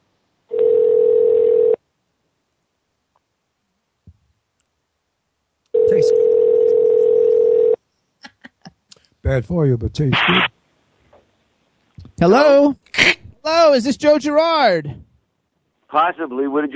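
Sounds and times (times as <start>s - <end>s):
telephone dial tone while placing a call: 0.5s - 1.8s, 5.8s - 7.8s
speech: 9.3s - 10.6s, 12.2s - 15.0s, 15.9s - 16.7s.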